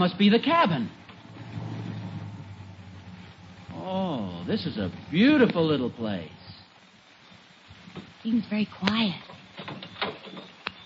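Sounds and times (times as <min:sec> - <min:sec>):
speech: 0:00.0 - 0:01.0, 0:04.5 - 0:06.4, 0:08.0 - 0:09.9
car engine slowing down and idling at low revs: 0:00.0 - 0:08.3.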